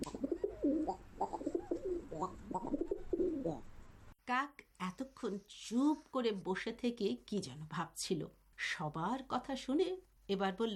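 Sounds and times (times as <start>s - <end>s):
pigeons cooing: 0.0s - 3.7s
speech: 4.3s - 10.7s.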